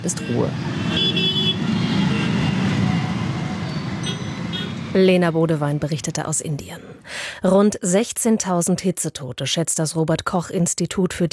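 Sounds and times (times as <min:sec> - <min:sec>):
speech: 0:00.0 - 0:01.9, 0:04.9 - 0:11.3
car horns honking: 0:00.0 - 0:05.0
dense street traffic in a large Indian city: 0:00.0 - 0:08.1.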